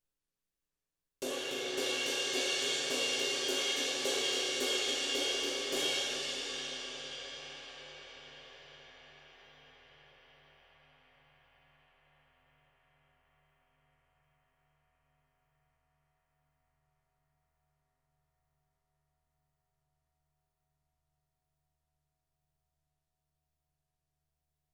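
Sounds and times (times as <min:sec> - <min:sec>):
crash ride cymbal build: 0:01.2 - 0:08.0.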